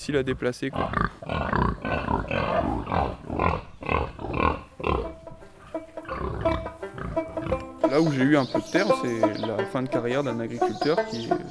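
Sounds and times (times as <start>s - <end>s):
speech: 0.0s - 3.2s, 7.9s - 11.4s
pig grunting with rough nasal snorts: 0.1s - 8.3s
pig squealing: 0.8s - 9.1s.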